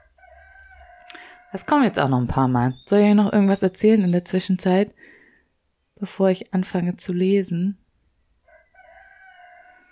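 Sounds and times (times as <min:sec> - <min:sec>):
rooster crowing: 0:00.0 - 0:01.7, 0:08.4 - 0:09.9
speech: 0:01.5 - 0:05.2, 0:06.0 - 0:07.8.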